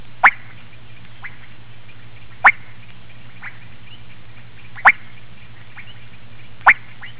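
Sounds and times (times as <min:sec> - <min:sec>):
Kassina maculatus frogs: 0:00.2 - 0:07.1.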